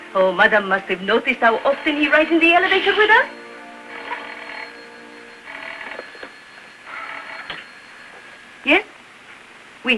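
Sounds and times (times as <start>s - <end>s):
speech: 0.1s - 3.4s
telephone bell ringing: 1.2s - 8.6s.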